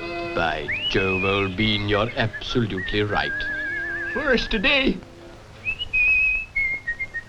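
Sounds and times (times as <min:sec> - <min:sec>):
speech: 0:00.4 - 0:05.1
puppet character whistling a short melodic tune: 0:00.6 - 0:01.5, 0:02.1 - 0:04.4, 0:05.6 - 0:07.2.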